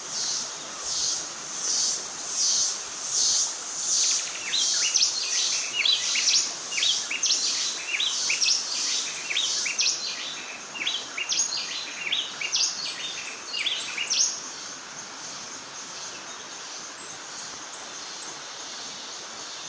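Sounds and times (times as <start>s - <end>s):
constant faint hiss: 0.0s - 19.6s
bay wren Cantorchilus nigricapillus singing rapid clear whistled notes: 4.1s - 14.4s.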